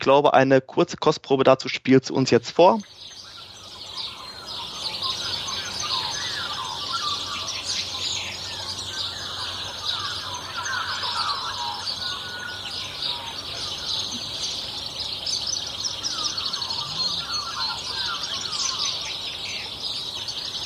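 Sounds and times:
speech: 0.0 - 3.2
dawn chorus of many birds singing in New Zealand: 2.5 - 20.6.

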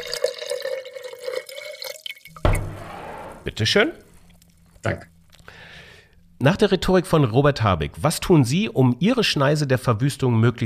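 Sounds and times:
water pouring into a glass: 0.0 - 3.4
speech: 3.4 - 4.0, 4.8 - 5.1, 6.4 - 10.6.

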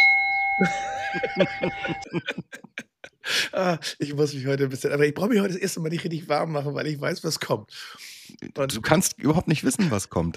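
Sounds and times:
electronic gong chime: 0.0 - 2.1
person laughing: 0.6 - 4.0
speech: 0.6 - 10.3.

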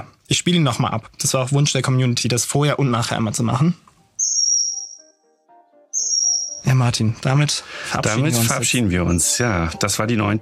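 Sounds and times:
speech: 0.0 - 3.9, 6.8 - 10.4
faint lower chirps: 4.0 - 6.7
common kingfisher shrill high-pitched whistles: 4.2 - 5.1, 5.9 - 6.7.

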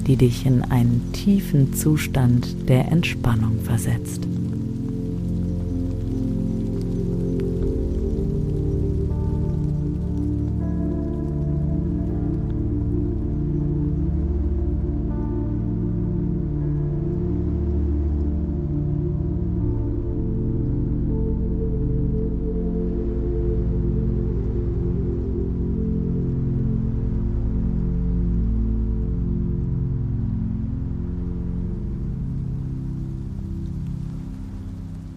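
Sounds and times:
rain pattering on tree leaves and streets: 0.0 - 13.7, 31.1 - 35.1
faint drips: 0.0 - 13.8
calm droning ambient music bed with sustained low tones: 0.0 - 35.1
speech: 0.1 - 4.4.

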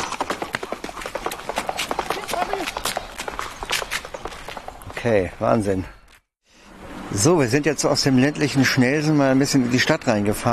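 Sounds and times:
running footsteps of jogging handler: 0.0 - 5.1
small guide horse galloping hoofbeats: 0.0 - 5.3
speech: 5.0 - 6.0, 7.1 - 10.5.

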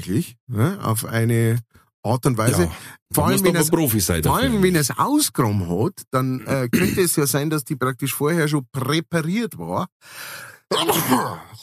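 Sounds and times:
speech: 0.0 - 11.6
sneeze: 10.7 - 11.5.

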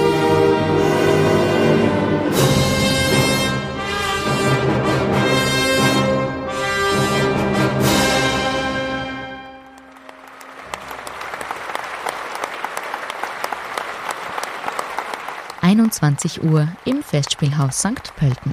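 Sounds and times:
final sustained orchestral chord: 0.0 - 12.0
large concert audience applause: 9.2 - 18.5
speech: 16.0 - 18.5.

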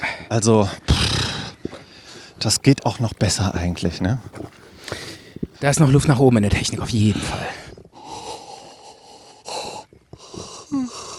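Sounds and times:
speech: 0.3 - 0.9, 2.4 - 5.0, 5.6 - 7.7
person yawning: 10.7 - 11.0.

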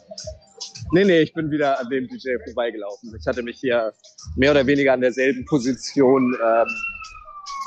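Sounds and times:
speech: 0.9 - 7.0
alarm siren of a replica movie car wailing: 4.4 - 7.6.

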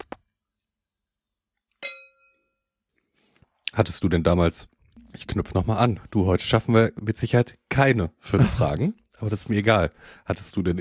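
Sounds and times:
glasses clinking together in a toast: 1.8 - 2.5
speech: 3.8 - 10.7.

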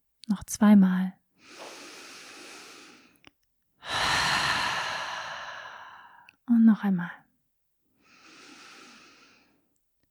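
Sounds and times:
speech: 0.3 - 1.7, 6.7 - 7.2
deep breaths exhaled through the open mouth during a guided relaxation exercise: 1.4 - 3.2, 3.8 - 6.3, 8.0 - 9.6.

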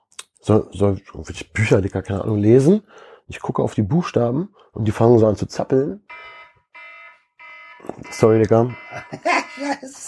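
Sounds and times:
speech: 0.4 - 6.3, 7.8 - 10.0
alarm clock ringing in loud electronic beeps: 6.1 - 10.0
laughter: 8.7 - 10.0.

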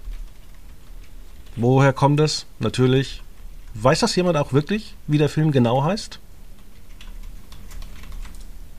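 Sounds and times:
typing on a computer keyboard: 0.1 - 1.6, 6.6 - 8.6
speech: 1.6 - 6.2.

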